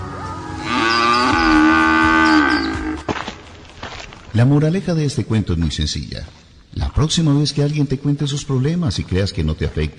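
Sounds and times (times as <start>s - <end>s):
cow mooing: 0.4s - 3.1s
speech: 4.4s - 6.4s, 7.0s - 9.9s.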